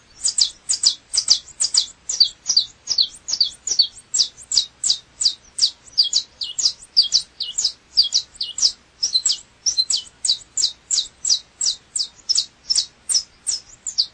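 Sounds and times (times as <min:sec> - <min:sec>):
double-collared seedeater chirping: 0:00.0 - 0:14.1.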